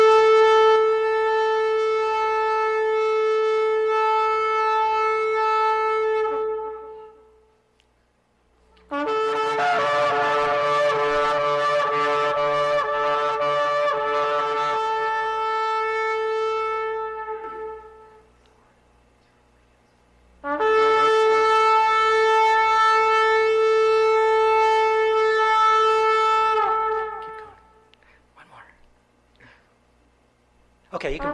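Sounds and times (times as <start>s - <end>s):
traditional ram's horn shofar blasts: 0.0s - 7.6s, 8.8s - 18.4s, 20.4s - 27.9s, 31.0s - 31.3s.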